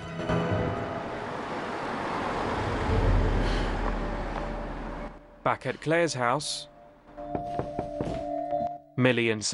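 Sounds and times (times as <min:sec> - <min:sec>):
steady broadband road noise: 0:00.0 - 0:08.2
car engine and tire rumble passing by outside a house: 0:00.2 - 0:05.3
speech: 0:05.5 - 0:06.7, 0:09.0 - 0:09.5.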